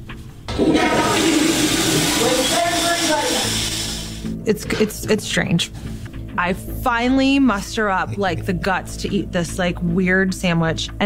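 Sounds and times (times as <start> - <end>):
toilet flushing: 0.5 - 4.3
speech: 0.6 - 1.0, 4.5 - 11.0.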